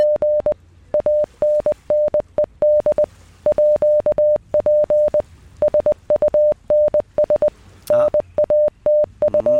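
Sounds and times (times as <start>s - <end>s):
Morse code tone played as a sound puzzle: 0.0s - 9.5s.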